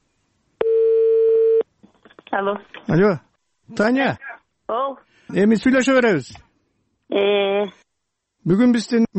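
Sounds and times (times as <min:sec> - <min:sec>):
telephone ringing tone as a call is placed: 0:00.6 - 0:01.6
speech: 0:02.4 - 0:06.5, 0:07.1 - 0:07.8, 0:08.4 - 0:09.1.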